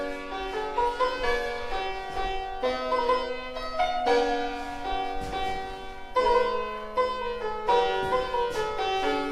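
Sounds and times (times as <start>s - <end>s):
antique mahogany square piano from 1776 playing a flowing melody: 0.0s - 9.3s.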